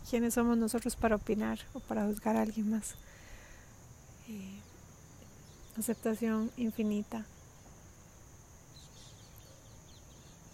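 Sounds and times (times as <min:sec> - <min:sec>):
crickets trilling in the evening outdoors: 0:00.0 - 0:10.5
speech: 0:00.1 - 0:03.2, 0:04.3 - 0:04.7, 0:05.8 - 0:07.4
small birds chirping: 0:01.3 - 0:03.6, 0:04.2 - 0:07.7, 0:08.6 - 0:10.5.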